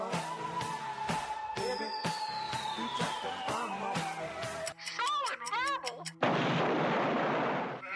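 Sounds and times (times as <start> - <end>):
falling whistle: 0.2 - 4.7
explosions sound effect: 6.2 - 7.8.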